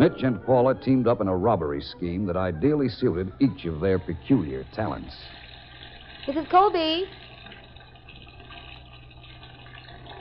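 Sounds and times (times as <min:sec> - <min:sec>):
speech: 0:00.0 - 0:05.4, 0:06.3 - 0:07.2
bathtub filling with running hot water: 0:03.5 - 0:10.2.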